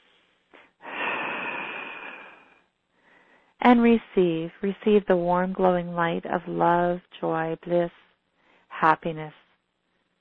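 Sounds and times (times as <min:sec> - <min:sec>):
slow deep breath during a guided meditation: 0:00.0 - 0:03.6, 0:08.3 - 0:08.7
speech: 0:03.6 - 0:08.0, 0:08.8 - 0:09.4.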